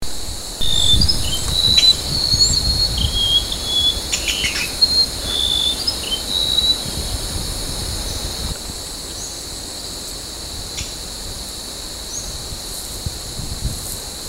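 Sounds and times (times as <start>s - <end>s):
high insect drone: 0.0s - 14.2s
Golden-bellied gerygone song at Rafflesia Centre in Borneo: 0.6s - 7.0s.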